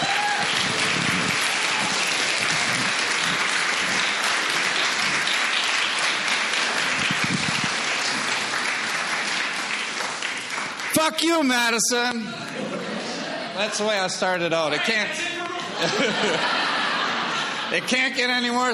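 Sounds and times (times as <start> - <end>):
cheers and whoops: 0.0 - 2.8
large audience applause: 0.0 - 12.2
speech: 11.0 - 12.5, 13.6 - 16.6, 17.7 - 18.7
laughter: 12.2 - 14.0, 15.4 - 18.2.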